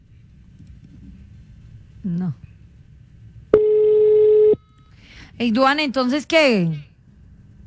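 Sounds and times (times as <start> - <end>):
faint low hum: 0.0 - 7.6
speech: 2.0 - 2.4, 5.4 - 6.9
telephone ringing out unanswered: 3.6 - 4.9.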